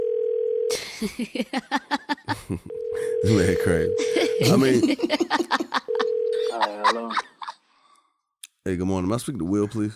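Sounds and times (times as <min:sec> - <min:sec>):
steady telephone tone: 0:00.0 - 0:00.7, 0:02.7 - 0:04.6, 0:05.9 - 0:06.4
telephone ringing pulses on the line: 0:00.0 - 0:00.7, 0:02.7 - 0:04.8, 0:05.9 - 0:06.6
laughter: 0:00.9 - 0:02.7, 0:04.0 - 0:07.6
speech: 0:01.0 - 0:05.6, 0:06.6 - 0:07.3, 0:08.7 - 0:09.9.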